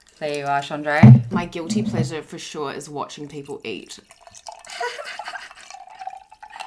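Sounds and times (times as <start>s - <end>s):
speech: 0.2s - 4.2s
wine pouring into a glass: 1.0s - 2.2s, 3.2s - 6.6s.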